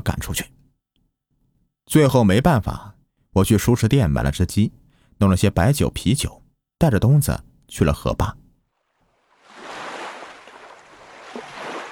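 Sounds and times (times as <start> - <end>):
speech: 0.3 - 0.5, 1.9 - 8.4
rushing river water: 9.3 - 11.9.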